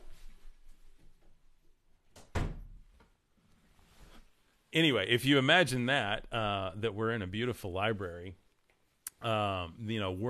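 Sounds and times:
door shutting with a solid thud: 2.2 - 2.8
speech: 4.7 - 8.4, 9.2 - 10.2.

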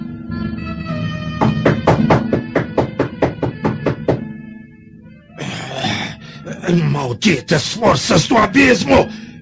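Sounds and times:
sharp knocks on an old man's wooden door: 1.4 - 4.3
speech: 6.7 - 9.2.

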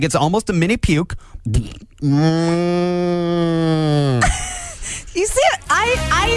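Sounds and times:
speech: 0.0 - 6.3
person imitating a cow's low guttural moo: 1.6 - 4.2.

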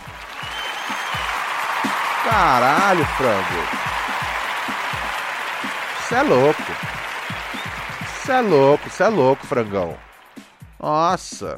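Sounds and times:
crowd applause, steady dense clapping: 0.0 - 10.8
loud voices shouting: 0.6 - 10.2
people laughing: 2.0 - 10.1
speech: 2.3 - 3.9, 6.1 - 7.0, 8.3 - 10.1, 10.8 - 11.5.

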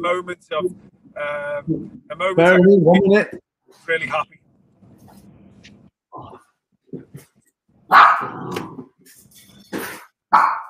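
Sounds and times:
speech: 0.0 - 4.4, 7.9 - 10.6
dog barking: 7.9 - 8.6, 10.3 - 10.6.

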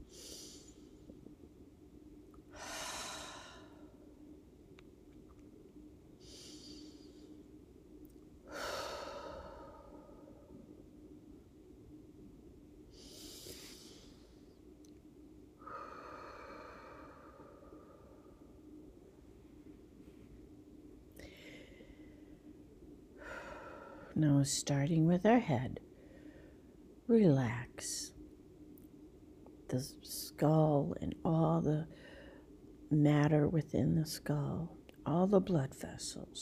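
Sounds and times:
slow deep breathing for a relaxation exercise: 0.0 - 1.3, 2.4 - 4.2, 6.2 - 7.5, 8.4 - 10.8, 12.9 - 14.6, 15.6 - 18.9, 21.1 - 22.6, 23.2 - 24.2, 25.9 - 26.8, 31.9 - 32.6
speech: 24.2 - 25.9, 27.1 - 28.0, 29.8 - 32.0, 32.9 - 36.3.

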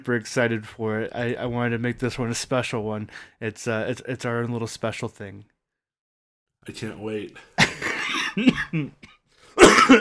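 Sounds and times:
speech: 0.0 - 5.5, 6.6 - 7.5, 8.4 - 9.9
person coughing: 7.6 - 9.9.

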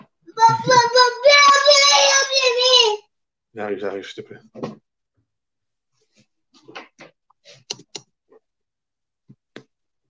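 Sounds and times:
young child crying in a high-pitched wail: 0.3 - 3.1
speech: 3.6 - 4.8.

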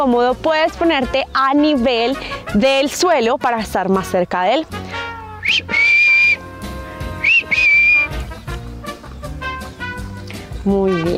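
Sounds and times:
speech: 0.0 - 4.8, 10.6 - 11.1
soft music: 0.0 - 11.1
person whistling to call a dog: 5.4 - 6.4, 7.2 - 8.2.

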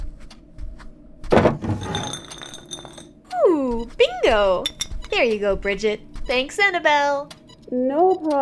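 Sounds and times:
wooden desk drawer pulled open with a thunk and rattle: 1.3 - 2.0
items shuffling inside a desk drawer: 1.3 - 3.0
faint glassy clinks of a vodka bottle in a drawer: 1.8 - 3.2, 4.6 - 5.0
speech: 4.2 - 8.4.

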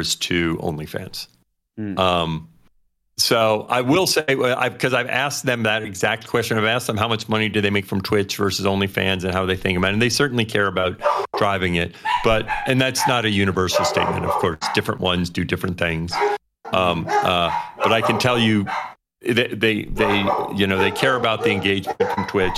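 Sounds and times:
speech: 0.0 - 2.5, 3.2 - 22.5
dogs barking and yipping: 11.0 - 14.9, 16.1 - 19.0, 19.9 - 22.5.

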